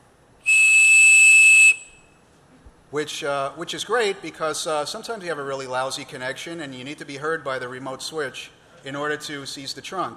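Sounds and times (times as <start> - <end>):
whistle blowing a 2600 hertz tone: 0.4 - 2.2
speech: 2.9 - 10.1.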